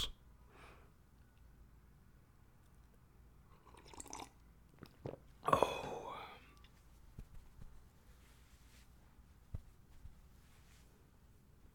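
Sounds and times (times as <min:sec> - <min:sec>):
person sipping water: 0:03.6 - 0:06.8.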